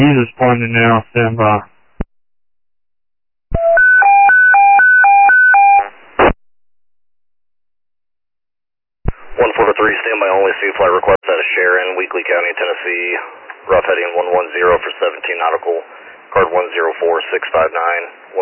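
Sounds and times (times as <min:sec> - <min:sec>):
voice talking over the radio: 0:00.0 - 0:01.6, 0:09.4 - 0:18.4
speech: 0:00.0 - 0:01.7, 0:09.7 - 0:18.4
alternating electronic paging tones over a radio channel: 0:03.5 - 0:05.9.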